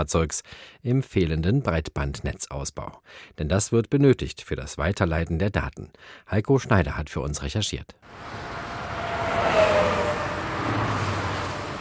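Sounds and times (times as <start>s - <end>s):
speech: 0.0s - 8.6s
traffic roar on the A9 motorway in Bavaria Germany: 8.0s - 11.7s
cars rushing past on a motorway: 8.1s - 11.7s.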